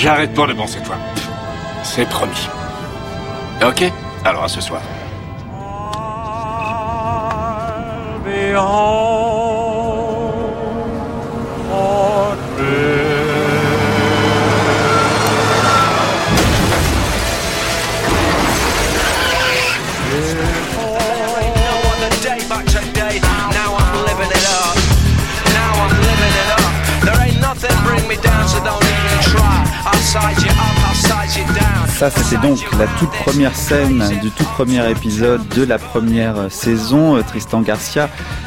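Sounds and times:
speech: 0.0s - 1.2s, 1.9s - 2.6s, 3.6s - 5.0s, 8.5s - 9.4s, 30.1s - 38.4s
bus and car engines rumbling: 0.0s - 38.4s
bus smashing into a car: 14.9s - 21.4s
crash debris crunching, rattling and rumbling: 16.3s - 21.5s.

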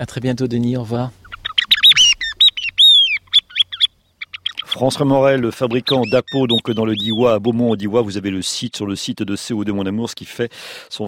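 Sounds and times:
speech: 0.0s - 1.2s, 4.7s - 11.0s
bird singing: 1.2s - 8.9s.

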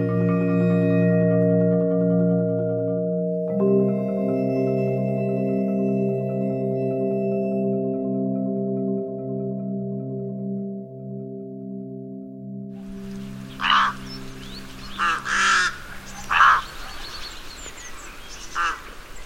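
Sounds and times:
steady humming musical drone: 0.0s - 19.2s
flock of rooks cawing: 12.9s - 19.2s.

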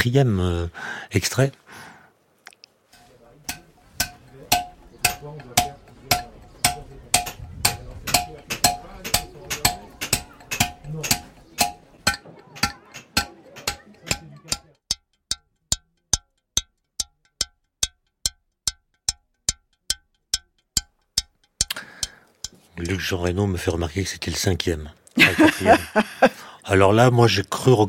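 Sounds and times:
speech: 0.0s - 1.9s, 22.9s - 27.8s
stonemasons chiseling stone with metallic taps: 3.0s - 15.0s, 17.0s - 23.0s
laughter: 12.2s - 14.5s, 25.2s - 26.6s.

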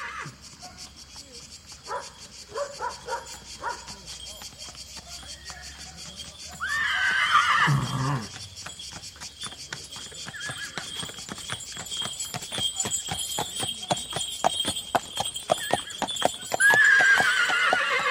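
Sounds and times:
horse whinnying loudly: 0.0s - 0.3s, 6.6s - 8.4s, 10.2s - 11.0s, 15.5s - 18.0s
horse hooves clip-clopping: 0.0s - 18.0s.

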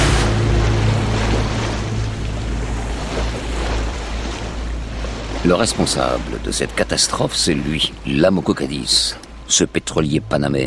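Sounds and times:
sea waves washing onto an oil-fouled beach from a stranded tanker: 0.0s - 9.7s
speech: 5.5s - 10.6s.

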